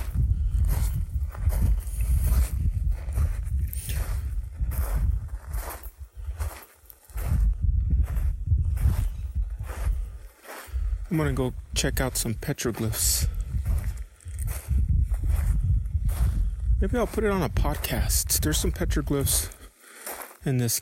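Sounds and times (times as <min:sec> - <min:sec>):
constant low rumble: 0:00.0 - 0:06.5, 0:07.2 - 0:10.2, 0:13.2 - 0:18.1
hiker's footsteps crunching through sand and dirt in a desert canyon wash: 0:00.0 - 0:20.8
speech: 0:11.1 - 0:13.4, 0:16.8 - 0:19.6, 0:20.4 - 0:20.8.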